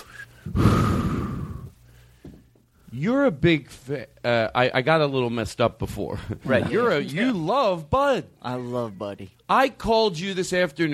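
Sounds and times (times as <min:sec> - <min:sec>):
deep breath: 0:00.1 - 0:02.4
speech: 0:03.0 - 0:10.9.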